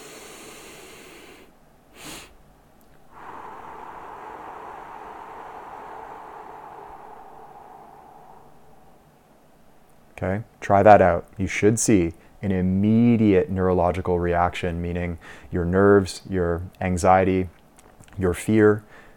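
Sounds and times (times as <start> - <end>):
long breathy exhale after a full inhale during a calming breathing exercise: 0.0 - 2.4, 3.0 - 9.2
speech: 10.2 - 17.6, 18.2 - 19.0.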